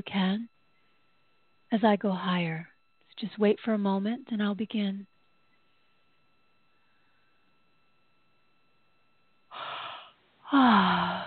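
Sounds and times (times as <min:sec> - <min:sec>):
speech: 0:01.8 - 0:05.1, 0:10.5 - 0:11.2
long breathy inhale: 0:09.5 - 0:11.2
loud yawn with downward sliding voiced tone: 0:09.5 - 0:11.2.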